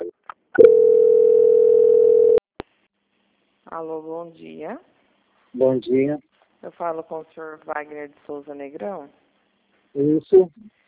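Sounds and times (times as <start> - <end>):
steady mid-pitched telephone tone during a call transfer: 0.6 - 2.4
speech: 3.8 - 4.9, 5.5 - 9.2, 10.0 - 10.8.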